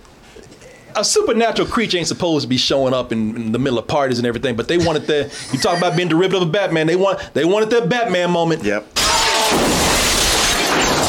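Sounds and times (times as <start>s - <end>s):
speech: 1.0s - 9.7s
laughter: 4.8s - 6.3s
fake glass shattering: 9.0s - 11.0s.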